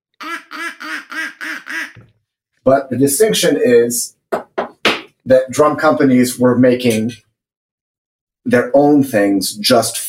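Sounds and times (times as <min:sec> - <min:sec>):
duck call quacking: 0:00.2 - 0:02.0
speech: 0:02.6 - 0:04.2, 0:05.3 - 0:07.3, 0:08.4 - 0:10.0.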